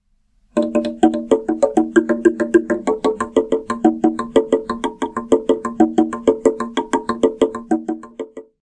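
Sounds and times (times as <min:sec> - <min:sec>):
log drum: 0:00.5 - 0:08.6.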